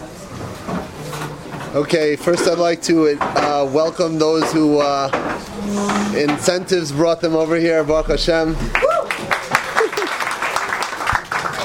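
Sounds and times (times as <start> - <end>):
speech: 1.7 - 8.8
audience clapping at a yeshiva: 8.7 - 11.6.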